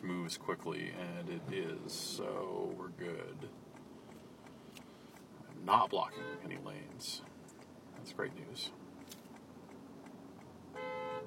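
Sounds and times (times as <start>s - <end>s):
speech: 0.0s - 3.7s, 5.6s - 7.3s, 8.0s - 8.8s
low rumble of traffic noise: 0.0s - 11.2s
car horn honking at a woman forcing her way into traffic: 6.0s - 6.6s, 10.7s - 11.2s.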